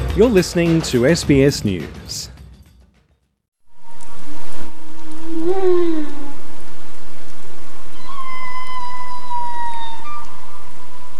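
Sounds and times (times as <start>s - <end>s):
speech: 0.2s - 2.3s
humpback whales calling to each other in Glacier Bay, Alaska, in summer: 5.2s - 6.6s, 7.9s - 11.1s.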